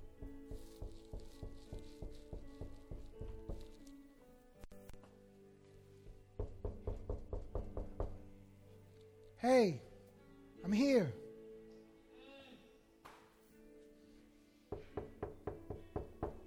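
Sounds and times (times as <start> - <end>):
knocking on a door: 0.1 - 3.7, 6.1 - 8.2, 14.7 - 16.4
speech: 9.4 - 9.9, 10.7 - 11.2.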